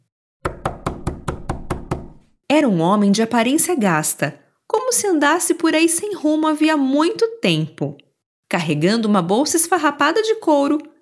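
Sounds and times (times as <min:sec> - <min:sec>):
knocking on a wooden door: 0:00.4 - 0:02.3
speech: 0:02.5 - 0:10.9.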